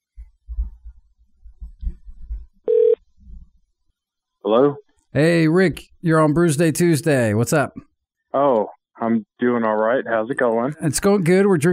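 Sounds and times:
telephone dial tone beep for an outgoing call: 2.7s - 3.0s
speech: 4.5s - 11.7s.

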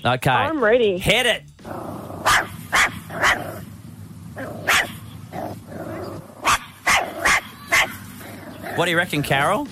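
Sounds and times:
speech: 0.0s - 3.7s, 8.8s - 9.7s
dog barking: 2.2s - 3.7s, 4.4s - 8.7s.

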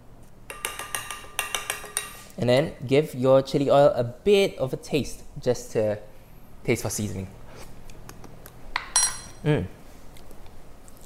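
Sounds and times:
spoon clinking against a bowl while stirring salt into chili oil: 0.5s - 2.2s, 8.8s - 9.4s
speech: 2.4s - 7.4s, 9.4s - 9.8s.

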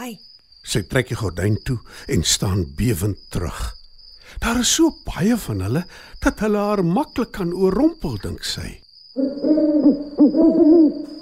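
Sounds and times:
speech: 0.0s - 11.2s
several owls hooting in a chorus: 9.2s - 11.2s.

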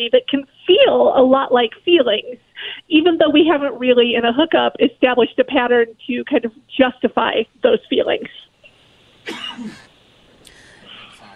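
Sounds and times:
speech: 0.0s - 8.4s
quick cough: 9.3s - 9.9s.

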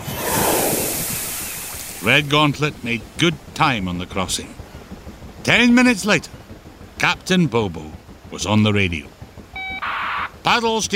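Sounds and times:
water spray splashing: 0.0s - 6.4s
speech: 2.0s - 4.6s, 5.5s - 6.4s, 7.0s - 9.1s, 10.4s - 10.9s.

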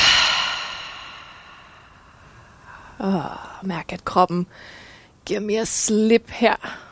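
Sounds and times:
deep exhale after breathing in through the nose during guided relaxation: 0.0s - 3.0s
speech: 3.0s - 6.8s.

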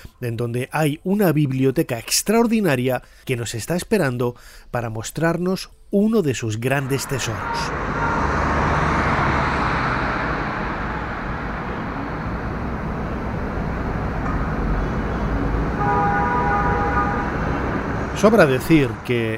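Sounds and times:
speech: 0.2s - 8.2s, 18.2s - 19.3s
engines of busy city street traffic rumbling in Cairo Egypt: 6.6s - 19.3s
car horn honking in Cairo Egypt: 6.8s - 19.1s.

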